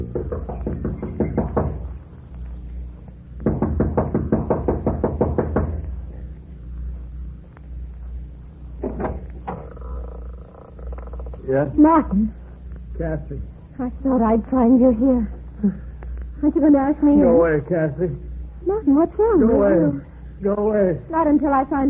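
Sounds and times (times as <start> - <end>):
speech: 0.0 - 0.5, 11.6 - 12.4, 13.0 - 21.8
young woman knocking impatiently on the wooden front door of a small mountain lodge: 0.0 - 2.0, 3.4 - 6.0, 8.8 - 9.6
low rumble: 0.0 - 21.8.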